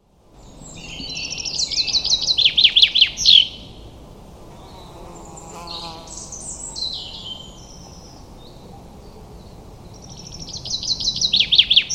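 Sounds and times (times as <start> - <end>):
common chaffinch song: 0.3 - 3.8, 4.6 - 11.9.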